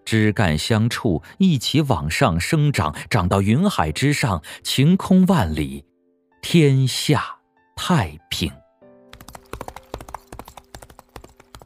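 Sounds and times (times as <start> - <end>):
speech: 0.1 - 8.6
horse hooves clattering on a street at night as a rider goes fast: 9.2 - 11.6.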